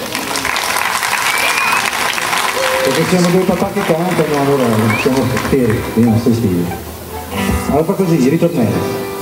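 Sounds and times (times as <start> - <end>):
audience applause at a singing performance: 0.0 - 6.8
speech: 2.9 - 6.9, 7.7 - 9.1.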